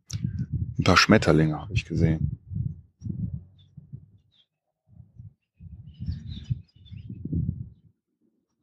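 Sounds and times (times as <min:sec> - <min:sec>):
heavy low rumbling bursts of noise: 0:00.1 - 0:04.2, 0:05.2 - 0:07.8
speech: 0:00.8 - 0:02.4
unseen birds chirping faintly: 0:03.0 - 0:07.9.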